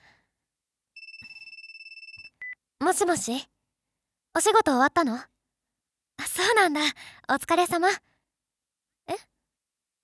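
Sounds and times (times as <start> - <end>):
phone ringtone ringing, a bright pulsing electronic tone: 1.0 - 2.6
speech: 2.8 - 3.5, 4.4 - 5.3, 6.4 - 8.1, 9.1 - 9.3.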